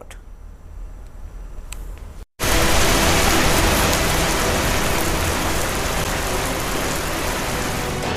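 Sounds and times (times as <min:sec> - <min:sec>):
giant hailstones falling on road and cars: 0:02.4 - 0:08.0.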